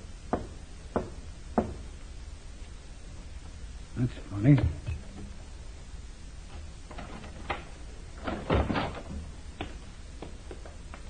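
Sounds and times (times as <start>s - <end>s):
low hum: 0.0s - 11.0s
knocking on a side door: 0.3s - 1.8s
speech: 4.0s - 4.9s.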